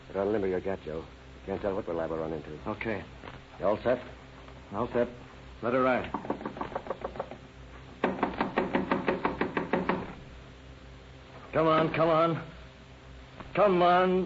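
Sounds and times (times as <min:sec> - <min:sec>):
speech: 0:00.1 - 0:06.5, 0:11.6 - 0:12.6, 0:13.6 - 0:14.2
rapid insistent knocking on a rooming house room door: 0:06.0 - 0:07.4, 0:08.0 - 0:10.2.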